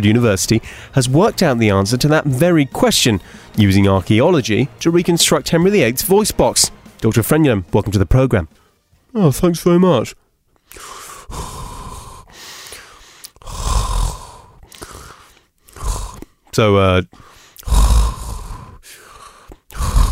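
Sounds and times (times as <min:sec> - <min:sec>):
speech: 0:00.0 - 0:11.6, 0:16.6 - 0:17.3
loud heavy breathing against a microphone: 0:00.6 - 0:01.0, 0:03.2 - 0:03.6, 0:10.2 - 0:16.5, 0:17.1 - 0:20.1.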